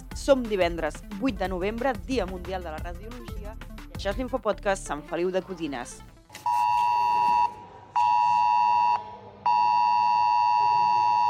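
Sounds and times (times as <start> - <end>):
speech: 0.2 - 6.5
mobile phone emergency alert tone: 6.4 - 11.2.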